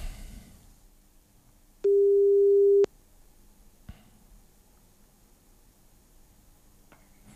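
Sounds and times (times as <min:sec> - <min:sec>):
telephone ringback tone of an outgoing call: 0:01.9 - 0:02.9.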